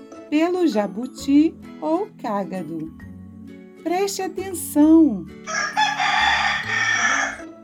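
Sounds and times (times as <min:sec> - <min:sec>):
speech: 0:00.3 - 0:03.0, 0:03.8 - 0:05.8
rooster crowing: 0:05.5 - 0:07.5.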